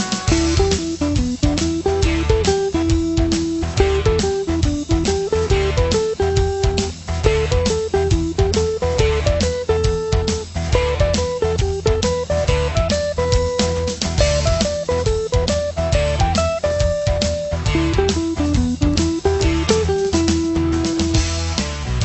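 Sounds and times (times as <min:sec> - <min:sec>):
ascending pentatonic blues pattern: 0:00.1 - 0:21.9.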